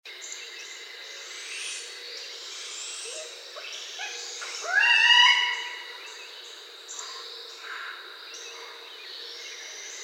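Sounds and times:
juvenile barred owl calling: 4.0 - 6.0.

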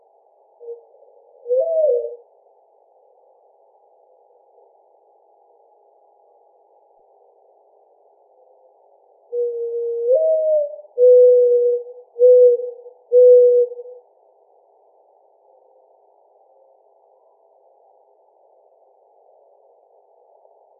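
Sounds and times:
mourning dove cooing: 0.6 - 2.4, 9.3 - 14.0.

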